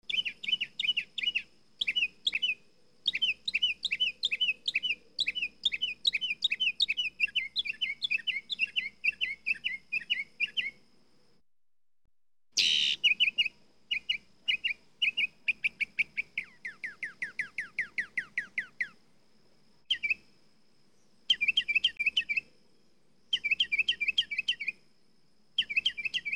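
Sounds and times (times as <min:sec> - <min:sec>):
mockingbird singing: 0:00.1 - 0:10.8, 0:12.6 - 0:19.0, 0:19.9 - 0:20.2, 0:21.3 - 0:22.5, 0:23.3 - 0:24.8, 0:25.6 - 0:26.3.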